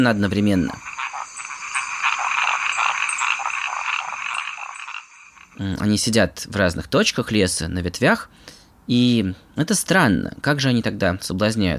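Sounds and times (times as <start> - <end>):
speech: 0.0 - 0.9, 5.6 - 11.7
chorus of male burrowing treefrogs calling in Panama: 0.0 - 5.7.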